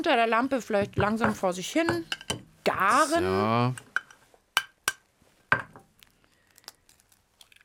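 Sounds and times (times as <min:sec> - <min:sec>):
speech: 0:00.0 - 0:03.9
egg cracked against a small metal pan: 0:00.8 - 0:02.5, 0:04.0 - 0:05.9
eggshell crinkling and breaking apart: 0:05.9 - 0:07.6.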